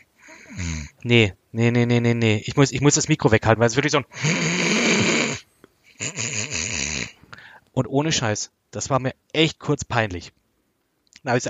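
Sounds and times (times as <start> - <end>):
person imitating snoring: 0.0 - 1.0, 4.1 - 7.2
speech: 1.0 - 4.6, 7.8 - 10.4, 11.2 - 11.4.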